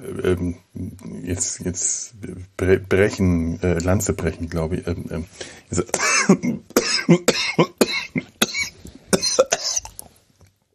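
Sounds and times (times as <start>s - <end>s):
speech: 0.1s - 7.8s
harsh coughing fit: 5.8s - 9.9s.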